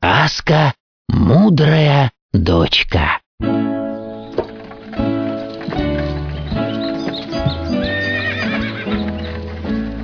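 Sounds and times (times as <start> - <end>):
speech: 0.2 - 3.9
horse hooves clip-clopping: 4.1 - 10.0
horse neighing: 7.1 - 9.4.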